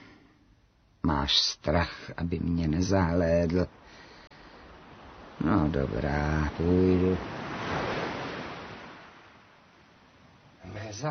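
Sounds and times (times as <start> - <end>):
speech: 1.1 - 4.0, 5.4 - 7.4
sea wave washing onto the shore: 3.4 - 11.0.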